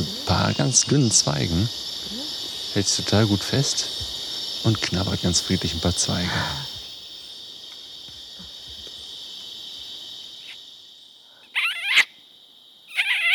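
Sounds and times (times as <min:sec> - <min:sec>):
man making squeaky calls to lure orangutans: 0:00.0 - 0:01.3, 0:11.6 - 0:12.1, 0:12.9 - 0:13.3
high insect drone: 0:00.0 - 0:13.3
speech: 0:00.5 - 0:02.0, 0:02.8 - 0:06.7.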